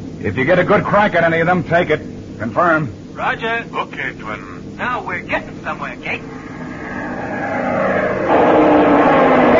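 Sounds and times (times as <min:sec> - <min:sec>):
speech: 0:00.2 - 0:06.5
propeller airplane engine roaring while diving overhead: 0:02.0 - 0:09.5.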